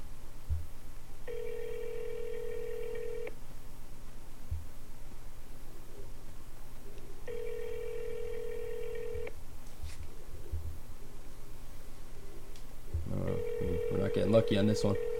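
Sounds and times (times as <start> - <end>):
low steady hum: 0.0 - 15.1
telephone ringback tone: 1.3 - 3.3, 7.3 - 9.3, 13.1 - 15.1
speech: 14.3 - 15.1.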